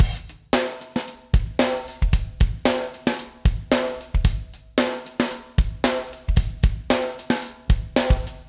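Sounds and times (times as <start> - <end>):
snare drum hit: 0.0 - 0.8
open hi-hat: 0.0 - 8.4.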